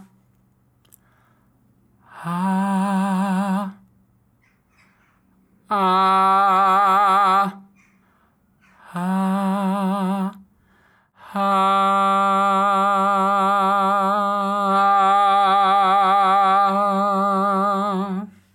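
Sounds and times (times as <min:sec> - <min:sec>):
light airy vocal singing ah: 0:02.0 - 0:03.9, 0:05.6 - 0:18.5.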